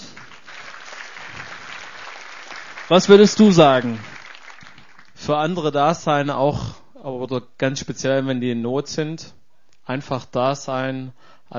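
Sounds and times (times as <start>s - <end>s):
applause: 0.0s - 5.4s
speech: 2.9s - 4.1s, 5.3s - 11.5s.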